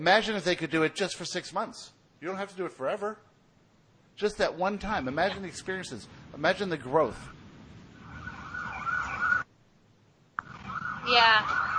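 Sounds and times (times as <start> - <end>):
speech: 0.0 - 3.3, 4.2 - 7.4, 11.1 - 11.7
low road rumble: 4.2 - 9.5, 10.4 - 11.7
fire truck siren wailing: 8.0 - 9.5, 10.4 - 11.7.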